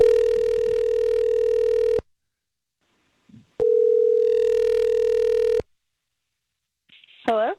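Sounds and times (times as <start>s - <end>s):
outgoing phone call electronic ring tone: 0.0s - 2.0s, 3.6s - 5.6s.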